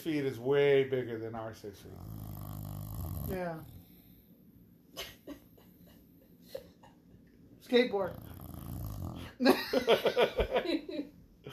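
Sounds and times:
speech: 0:00.0 - 0:02.5, 0:03.3 - 0:03.8, 0:07.7 - 0:08.3, 0:09.4 - 0:11.5
dog snoring: 0:01.8 - 0:04.2, 0:08.0 - 0:09.4.

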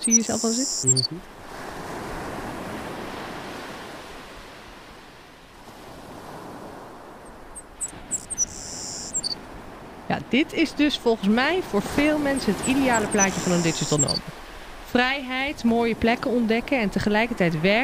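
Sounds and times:
faint high bird chirps: 0:00.0 - 0:01.2, 0:07.5 - 0:09.4, 0:12.4 - 0:14.2
speech: 0:00.0 - 0:01.6, 0:10.1 - 0:17.8
ocean waves breaking on a beach: 0:00.0 - 0:17.8.

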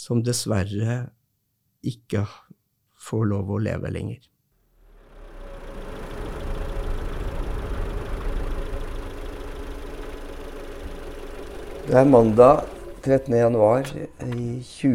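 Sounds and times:
speech: 0:00.0 - 0:01.2, 0:01.8 - 0:04.3, 0:11.9 - 0:14.9
car engine hum while driving: 0:04.7 - 0:14.9
broadband road noise: 0:04.8 - 0:14.9.

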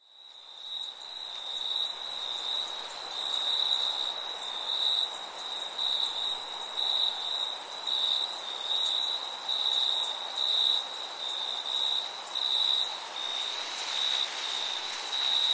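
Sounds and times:
cricket chorus with rapid high-pitched chirps: 0:00.0 - 0:15.5
steady shrill insect hum: 0:00.1 - 0:15.5.

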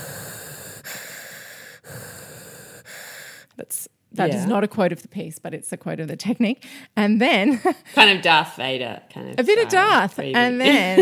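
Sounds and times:
grainy hissing breath sound made by shaping the tongue inside the mouth: 0:00.0 - 0:03.6
speech: 0:03.6 - 0:11.0.

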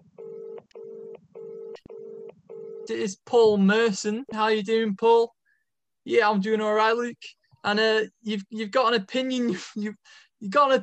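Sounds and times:
electronic telephone ringing: 0:00.1 - 0:02.9
speech: 0:02.9 - 0:05.4, 0:06.0 - 0:10.8.

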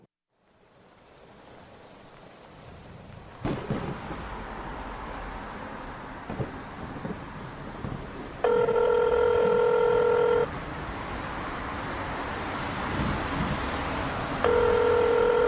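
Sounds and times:
hiss: 0:00.0 - 0:15.4
telephone ringback tone: 0:08.4 - 0:10.5, 0:14.4 - 0:15.4.

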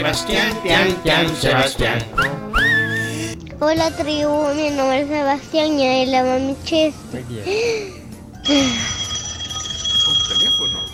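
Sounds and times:
speech: 0:00.0 - 0:02.7, 0:03.6 - 0:08.9
telephone ringing with high electronic tone: 0:08.4 - 0:10.9.

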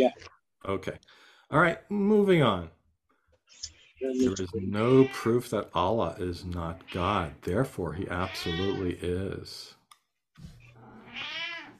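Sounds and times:
speech: 0:00.0 - 0:02.8, 0:03.5 - 0:09.8
cat meowing: 0:04.8 - 0:05.3, 0:08.1 - 0:08.9, 0:10.7 - 0:11.7.

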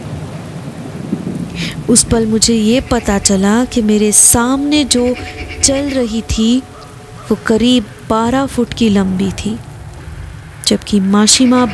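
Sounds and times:
deep rumble and crack of thunder: 0:00.0 - 0:11.7
heavy rain pouring: 0:00.0 - 0:11.7
speech: 0:01.6 - 0:06.7, 0:07.3 - 0:09.7, 0:10.7 - 0:11.7.

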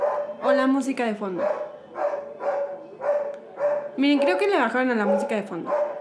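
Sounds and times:
dog barking in a neighbourhood: 0:00.0 - 0:00.6, 0:01.3 - 0:04.4, 0:05.0 - 0:05.9
speech: 0:00.5 - 0:01.7, 0:04.0 - 0:05.8.

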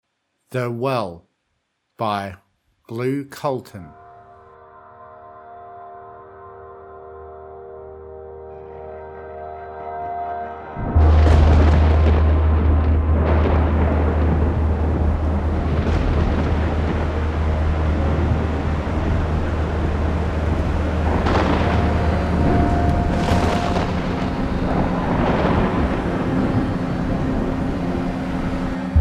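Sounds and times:
speech: 0:00.5 - 0:01.3, 0:02.0 - 0:04.0
rolling thunder: 0:10.8 - 0:29.0.

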